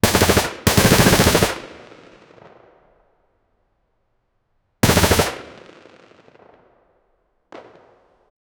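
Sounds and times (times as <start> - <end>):
machine gun: 0.0 - 2.0, 4.8 - 5.7.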